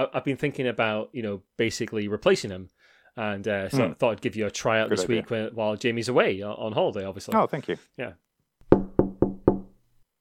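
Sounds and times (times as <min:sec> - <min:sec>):
speech: 0:00.0 - 0:08.2
knocking on a locked wooden door: 0:08.6 - 0:09.8.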